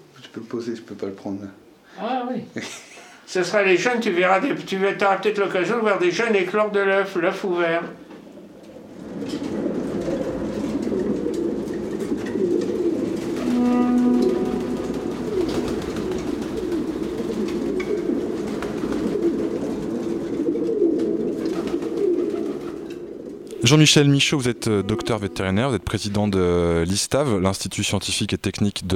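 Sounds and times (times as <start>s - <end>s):
speech: 0.4s - 8.0s, 23.7s - 28.9s
dense chorus of pigeons cooing: 8.0s - 25.9s
brief high tonal note: 13.4s - 16.0s, 24.6s - 25.8s.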